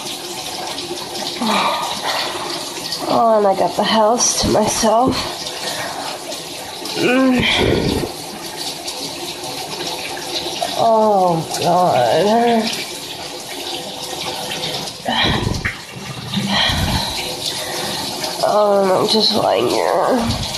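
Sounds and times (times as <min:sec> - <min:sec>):
shower water running: 0:00.0 - 0:20.5
speech: 0:01.4 - 0:01.8, 0:03.1 - 0:05.4, 0:07.0 - 0:08.0, 0:10.8 - 0:12.8, 0:18.4 - 0:20.4.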